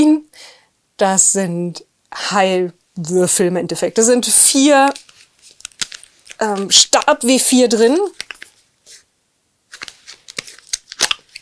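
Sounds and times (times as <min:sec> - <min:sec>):
speech: 0:00.0 - 0:05.0, 0:06.4 - 0:08.3
crinkling plastic of child-resistant packaging of a dice set: 0:04.7 - 0:08.6, 0:09.7 - 0:11.4.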